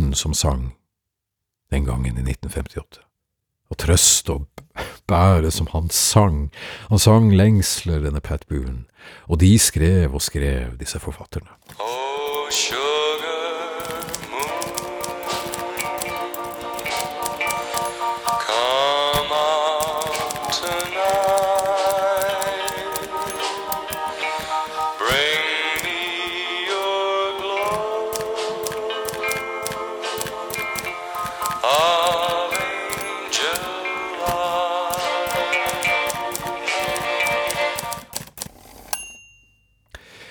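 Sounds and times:
speech: 0.1 - 0.8, 1.7 - 3.1, 3.7 - 12.9
typewriter keys clacking: 11.6 - 39.0.

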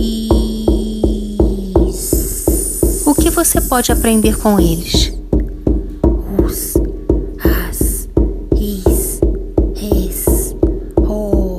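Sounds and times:
shamanic journey drumbeats: 0.0 - 11.5
speech: 3.4 - 5.2.

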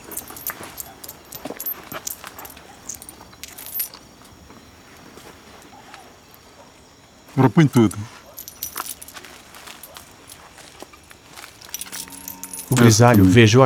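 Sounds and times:
coins clinking drawn from a cloth pouch: 0.0 - 4.1, 8.3 - 13.6
soft rustling of a cloth pouch: 0.0 - 6.1, 8.0 - 12.7
speech: 7.4 - 8.2, 12.7 - 13.6.

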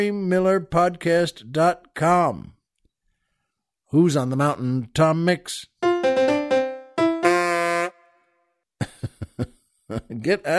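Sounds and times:
speech: 0.0 - 2.6, 3.9 - 5.7, 9.4 - 10.5
horn honking: 6.3 - 8.3.

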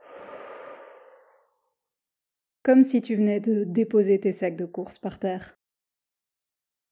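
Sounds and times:
deep breathing in through the nose and out through the mouth during a calming exercise: 0.0 - 1.7
speech: 2.6 - 5.6.

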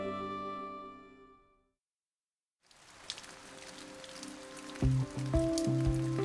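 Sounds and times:
melting snow dripping on window: 2.7 - 6.2.

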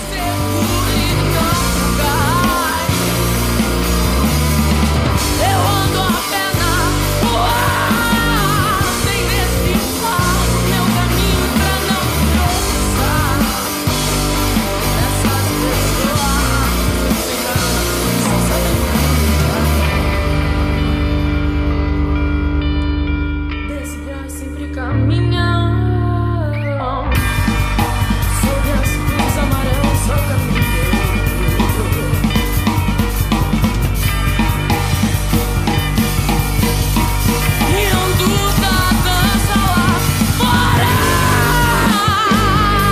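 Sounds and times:
loud driving rock song with dense guitars and drums: 0.0 - 42.9
female singer screaming: 38.6 - 42.9.

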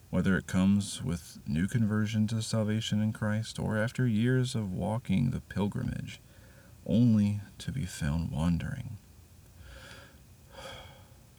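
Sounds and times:
speech: 0.1 - 9.0
deep breath in and out: 6.2 - 6.8, 9.6 - 11.2.

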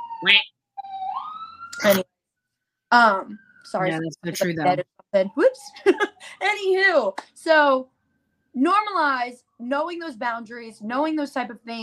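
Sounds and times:
emergency vehicle siren passing outside: 0.0 - 2.0, 2.9 - 6.6
speech: 0.2 - 0.5, 1.8 - 2.1, 2.9 - 8.0, 8.6 - 11.8.

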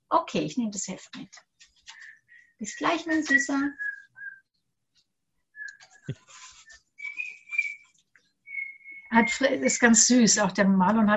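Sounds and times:
speech: 0.2 - 1.5, 2.6 - 3.9, 6.1 - 6.3, 9.1 - 11.1
child whistling short wavering notes: 2.7 - 4.4, 5.6 - 7.9, 8.5 - 9.4.

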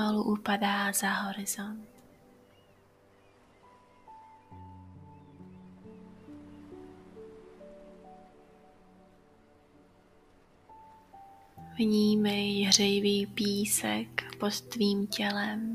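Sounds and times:
speech: 0.0 - 2.0, 11.8 - 15.7
soft ocean surf washing steadily: 2.8 - 11.8.

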